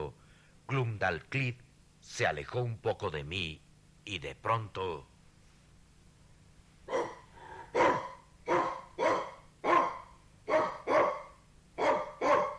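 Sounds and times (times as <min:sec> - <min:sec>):
speech: 0:00.1 - 0:05.1
small white dog barking with sharp yaps: 0:06.9 - 0:12.5.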